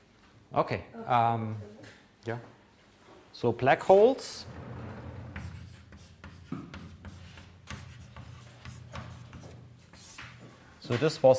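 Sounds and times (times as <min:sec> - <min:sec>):
speech: 0:00.5 - 0:02.6, 0:03.4 - 0:04.6, 0:10.9 - 0:11.3
handwriting on a surface: 0:04.7 - 0:10.4.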